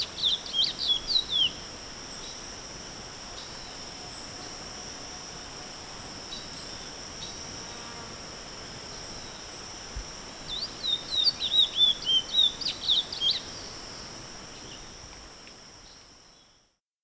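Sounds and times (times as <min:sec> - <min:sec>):
high-pitched background hiss: 0:00.0 - 0:16.8
chestnut-bellied seed finch high warbled whistles: 0:10.5 - 0:13.4.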